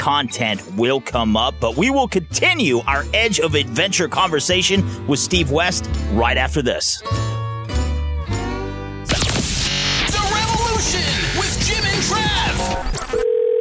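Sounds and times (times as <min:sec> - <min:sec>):
speech: 0:00.0 - 0:07.3
music: 0:00.0 - 0:13.1
telephone tones: 0:12.6 - 0:13.5
dial tone: 0:12.8 - 0:13.5.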